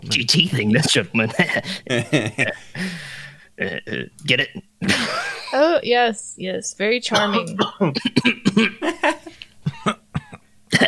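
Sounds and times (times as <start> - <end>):
people laughing: 0.0 - 3.2, 4.8 - 5.7, 7.1 - 10.0
several people coughing: 0.0 - 5.7, 7.1 - 10.8
speech: 0.1 - 3.0, 3.6 - 9.4.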